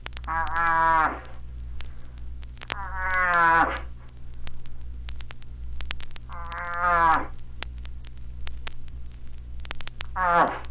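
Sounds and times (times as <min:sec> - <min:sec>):
crackling static: 0:00.0 - 0:10.6
steady low hum: 0:00.0 - 0:10.6
bull moose calling for a cow: 0:00.2 - 0:01.3, 0:02.7 - 0:03.9, 0:06.3 - 0:07.4, 0:10.1 - 0:10.6.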